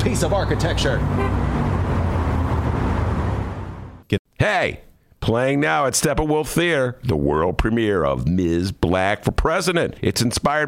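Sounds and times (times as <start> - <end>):
bus engine rumble in traffic: 0.0 - 4.0
road noise: 0.0 - 4.1
speech: 0.1 - 1.8, 4.4 - 10.6.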